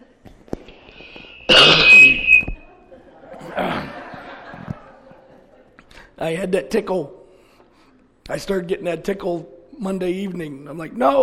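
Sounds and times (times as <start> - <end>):
faint breathy sounds: 0.8 - 1.5, 5.9 - 6.2, 7.2 - 8.1
loud harsh cough: 1.5 - 2.1, 3.6 - 4.0
laughter: 2.6 - 6.1
soft rough throat clearing: 3.4 - 4.0
speech: 6.2 - 7.2, 8.3 - 11.2.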